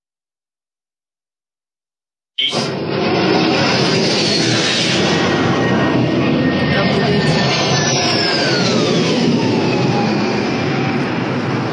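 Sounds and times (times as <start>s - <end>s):
speech: 2.4s - 3.1s
loud steady engine roar: 2.4s - 11.7s
military jet aircraft whining as it chases a drone: 2.4s - 11.7s.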